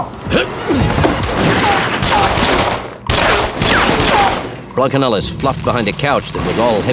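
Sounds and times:
automatic weapons gunfire in a shootout inside a house parlor: 1.2 - 4.6
speech: 4.8 - 6.9.

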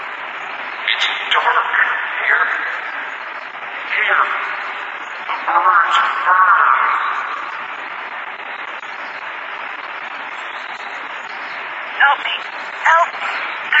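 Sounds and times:
radio static hissing: 0.0 - 13.7
warbling garbled voice-like tones: 0.9 - 2.9, 5.3 - 7.6, 12.0 - 13.7.

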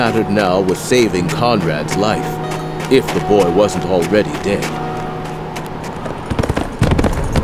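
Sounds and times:
speech: 0.0 - 4.9
horse hooves galloping: 0.0 - 7.4.

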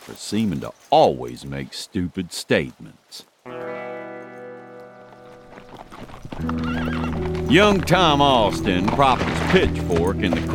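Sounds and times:
hooves clopping: 0.0 - 10.5
speech: 0.1 - 3.6, 7.5 - 10.5
horse neighing: 5.5 - 8.5.

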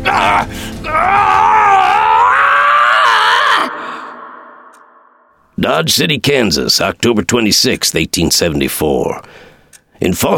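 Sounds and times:
man giving a short cry: 0.0 - 4.7
man screaming in terror and agony: 0.0 - 5.1
speech: 0.3 - 1.3, 5.6 - 10.3.

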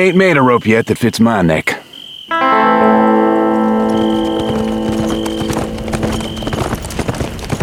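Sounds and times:
speech: 0.0 - 3.1
sustained ringing tone: 2.3 - 6.8
horse hooves clip-clopping: 3.7 - 7.6.

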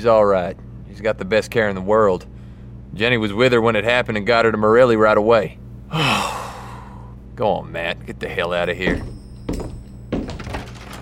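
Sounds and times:
speech: 0.0 - 2.3, 2.9 - 6.4, 7.4 - 9.2
office door slamming shut with heavy dull thuds and short rattle: 8.9 - 11.0.

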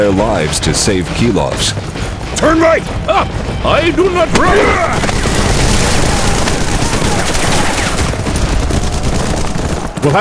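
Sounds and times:
speech: 0.0 - 5.2
heavy gunfire in a street battle at a command building in Minsk: 4.3 - 10.1.

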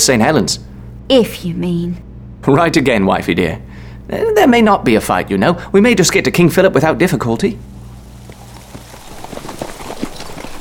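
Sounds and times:
speech: 0.0 - 7.7
hoofbeats of horses ridden at the head of a column of troops: 7.7 - 10.5.

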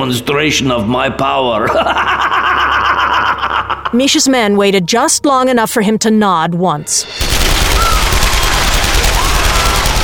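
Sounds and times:
speech: 0.0 - 2.7, 3.9 - 7.7
laughter: 1.6 - 4.2
submachine guns fired into a crowd: 7.1 - 10.0.

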